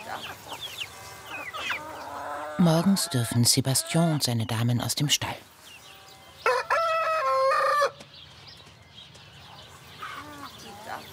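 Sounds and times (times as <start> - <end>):
bird calls: 0.0 - 11.1
hens clucking: 0.0 - 11.1
speech: 2.6 - 5.5
rooster kept with hens crowing: 6.3 - 8.0.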